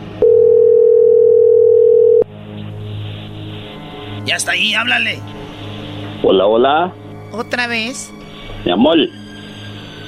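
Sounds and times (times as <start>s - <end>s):
telephone dial tone while a call is being redialed: 0.2s - 2.2s
speech: 4.3s - 5.4s, 6.2s - 9.2s.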